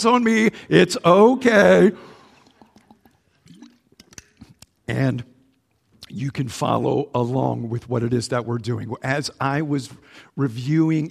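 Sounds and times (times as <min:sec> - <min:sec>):
speech: 0:00.0 - 0:02.1, 0:04.9 - 0:05.3, 0:06.1 - 0:11.0
person sipping water: 0:02.0 - 0:06.1
swallow: 0:02.1 - 0:04.6.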